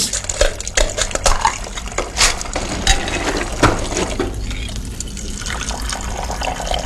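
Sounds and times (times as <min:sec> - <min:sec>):
gasoline leaking from a car pouring into an old gallon container: 0:00.0 - 0:06.8.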